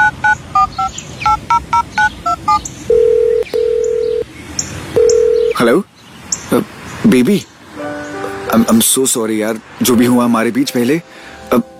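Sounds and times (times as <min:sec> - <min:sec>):
telephone keypad beeps dialing a number: 0:00.0 - 0:04.2, 0:05.0 - 0:05.6
telephone ringing tones: 0:00.0 - 0:04.2, 0:05.0 - 0:05.6
speech: 0:05.6 - 0:05.9, 0:07.1 - 0:07.5, 0:08.6 - 0:11.7.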